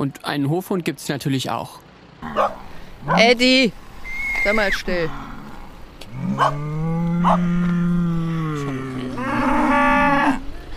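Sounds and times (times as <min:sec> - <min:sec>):
speech: 0:00.0 - 0:03.8, 0:04.4 - 0:05.3, 0:06.2 - 0:07.8
cows mooing on green pastures at a farm: 0:04.6 - 0:10.6.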